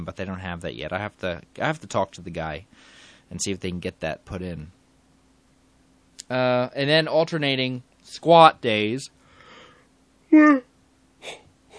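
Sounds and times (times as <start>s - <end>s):
speech: 0.0s - 4.8s, 6.2s - 9.2s, 10.3s - 11.4s
person yawning: 11.2s - 11.7s.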